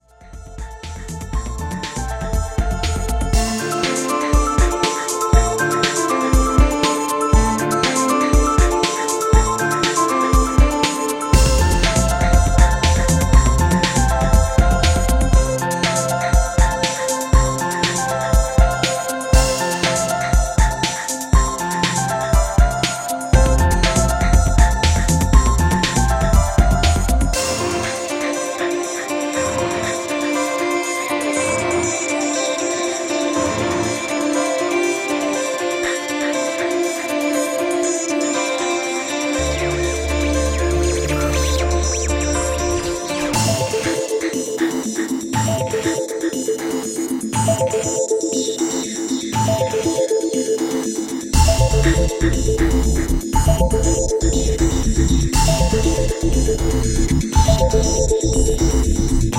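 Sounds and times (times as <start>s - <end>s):
piano in electronica: 0.0s - 59.3s
808 drum machine in electronica: 0.3s - 32.1s, 40.2s - 59.3s.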